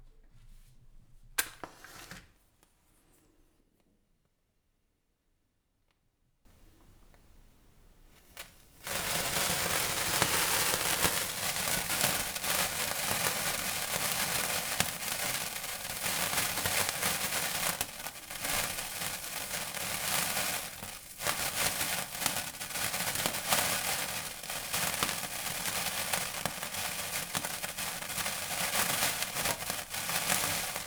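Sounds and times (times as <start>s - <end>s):
sparkler being lit: 6.5s - 30.8s.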